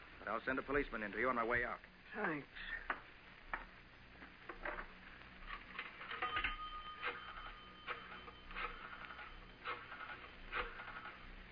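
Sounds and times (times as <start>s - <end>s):
speech: 0.3s - 3.0s
telephone ringing with a steady electronic tone: 5.6s - 11.4s.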